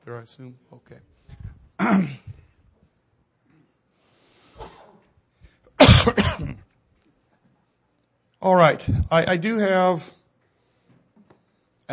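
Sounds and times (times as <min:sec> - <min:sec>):
speech: 0:00.0 - 0:02.3, 0:08.4 - 0:10.2
person clearing their throat: 0:01.8 - 0:02.5, 0:05.8 - 0:06.7
person coughing: 0:01.8 - 0:02.5, 0:05.8 - 0:06.7.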